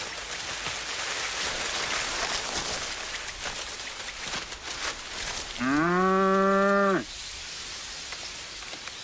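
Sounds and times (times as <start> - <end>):
steady hiss: 0.0 - 9.0
spotted cow mooing among cattails: 5.6 - 7.1.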